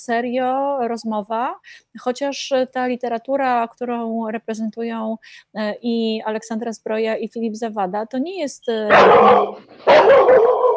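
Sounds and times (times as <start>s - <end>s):
speech: 0.0s - 10.6s
dogs barking: 8.9s - 10.7s.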